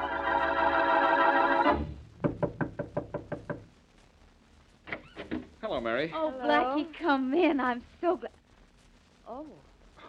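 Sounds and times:
music: 0.0 - 2.0
knocking on a door: 1.7 - 3.7
speech: 5.8 - 8.4, 9.4 - 10.0.

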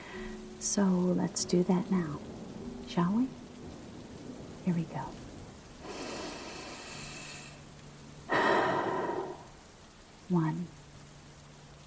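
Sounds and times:
deep breath during a guided group breathing exercise: 0.0 - 0.4, 5.8 - 7.7, 8.3 - 9.6
speech: 0.2 - 3.4, 4.7 - 5.2, 10.3 - 10.8.

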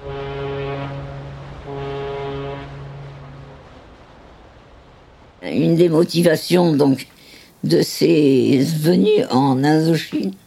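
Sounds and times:
deep ship's horn blasting as a ship arrives in Saigon: 0.0 - 5.2
speech: 5.4 - 10.4.

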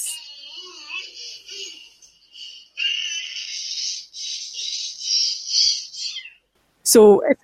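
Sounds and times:
two-year-old boy screeching in shrill high-pitched bursts: 0.0 - 1.8
speech: 6.9 - 7.4.

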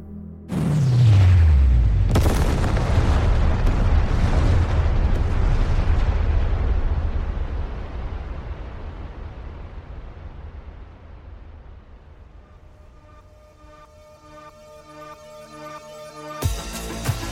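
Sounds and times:
thermonuclear warheads detonating in a massive explosion: 0.5 - 12.8.

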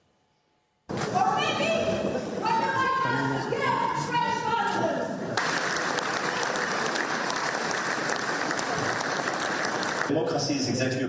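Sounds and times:
agitated crowd of protesters heckling and shouting: 0.9 - 10.1
clapping: 5.4 - 10.1.

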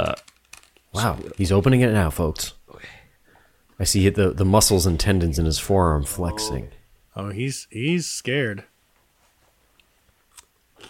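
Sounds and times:
speech: 1.0 - 3.0, 3.8 - 8.7
crisp bite into a crunchy homemade dill pickle brined for about five days: 10.3 - 10.8.

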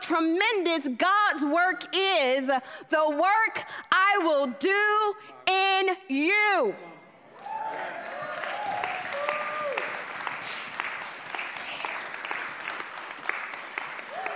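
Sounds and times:
speech: 0.1 - 6.9
crowd clapping: 7.3 - 14.3.

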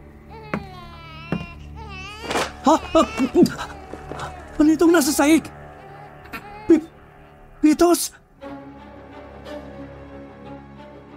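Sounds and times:
baby crying: 0.2 - 7.6
speech: 2.6 - 3.8, 4.6 - 5.6, 7.7 - 8.2.

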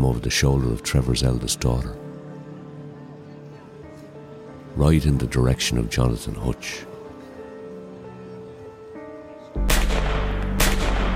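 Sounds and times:
speech: 0.0 - 2.0, 4.8 - 6.9
gunshots fired from a gun: 9.6 - 11.1.

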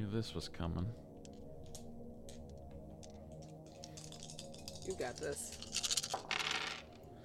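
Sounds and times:
speech: 0.0 - 1.1, 4.8 - 5.6
three dice rolled for a game check, rattling across a hard surface: 3.0 - 7.0.

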